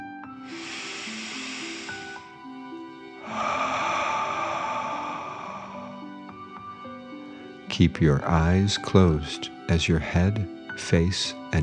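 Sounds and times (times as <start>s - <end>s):
soft sustained music: 0.0s - 11.6s
slow deep breath in and long airy exhale: 0.4s - 7.5s
speech: 7.8s - 11.6s.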